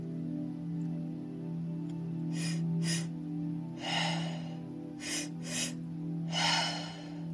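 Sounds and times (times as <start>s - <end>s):
low steady hum: 0.0s - 7.3s
mouth breathing with two inhalations and one exhalation: 2.3s - 3.1s, 3.8s - 7.2s.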